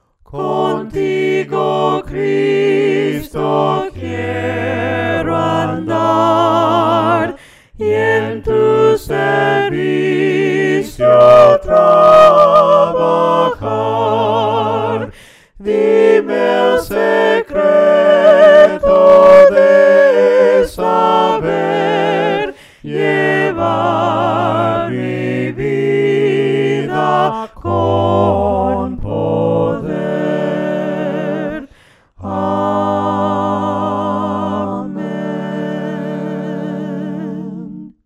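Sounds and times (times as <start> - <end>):
voices singing a Spanish hymn a cappella: 0.0 - 38.0.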